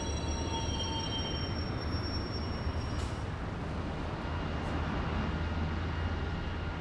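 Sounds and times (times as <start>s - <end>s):
high-pitched train wheel or brake squeals: 0.0s - 3.2s
long-distance train rumbling through a railway station: 0.0s - 6.8s.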